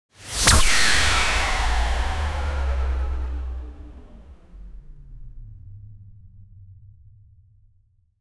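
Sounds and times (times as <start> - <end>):
single sci-fi weapon shot: 0.3 - 4.5.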